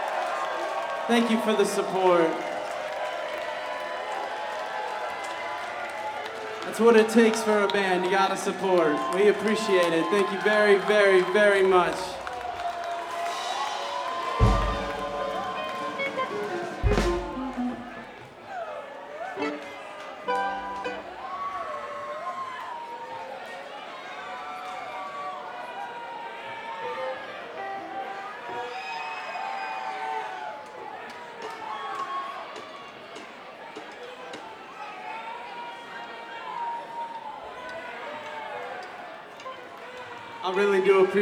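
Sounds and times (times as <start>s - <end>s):
concert crowd cheering and whooping for a band: 0.0s - 6.7s, 8.3s - 33.0s, 34.7s - 40.4s
speech: 1.1s - 2.5s, 6.7s - 12.2s
sharp low thumps: 14.4s - 18.1s.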